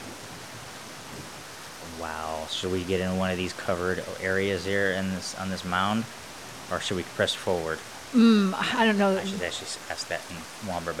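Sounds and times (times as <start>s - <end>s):
thunder rumble: 0.0s - 7.8s
heavy rain pouring: 0.0s - 10.9s
speech: 2.0s - 10.9s.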